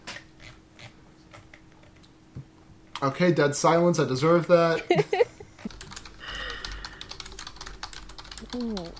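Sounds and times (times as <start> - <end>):
steady low electrical hum: 0.0 - 8.9
speech: 3.0 - 5.2
laughter: 4.7 - 5.7
soft typing on a computer keyboard: 5.6 - 8.9.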